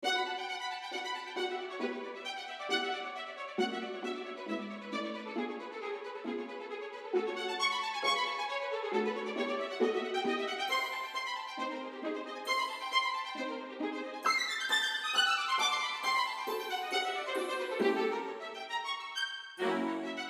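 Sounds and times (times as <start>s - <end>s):
bold and agile staccato strings for figure skating: 0.0s - 19.0s, 19.6s - 20.2s.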